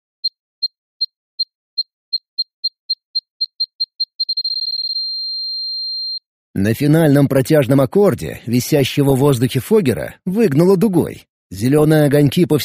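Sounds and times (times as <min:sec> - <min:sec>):
electronic alarm beeping, short high shrill beeps: 0:00.2 - 0:06.3
speech: 0:06.6 - 0:12.6.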